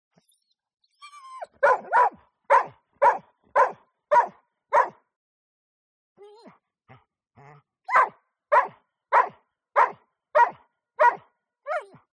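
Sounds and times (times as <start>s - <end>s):
German Shorthaired Pointer barking: 1.5s - 5.0s, 7.9s - 12.1s.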